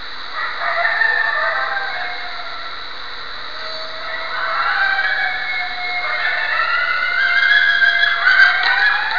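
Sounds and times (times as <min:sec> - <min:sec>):
wolves: 0:00.4 - 0:09.1.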